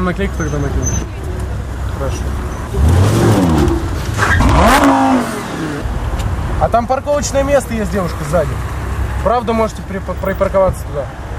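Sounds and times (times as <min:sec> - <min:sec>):
speech: 0:00.0 - 0:01.2, 0:02.0 - 0:03.6, 0:06.6 - 0:11.2
expensive car engine revving: 0:02.0 - 0:06.6.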